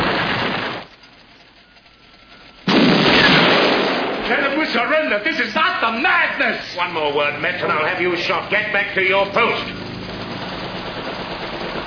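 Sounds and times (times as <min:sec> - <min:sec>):
noisy rumble: 0:00.0 - 0:11.8
special-effects explosion in a film scene: 0:02.7 - 0:04.4
speech: 0:04.3 - 0:09.8.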